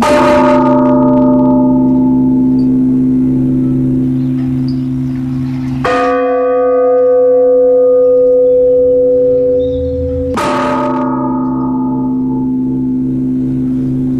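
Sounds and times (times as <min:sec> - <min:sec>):
church bells tolling a death knell: 0:00.0 - 0:14.1.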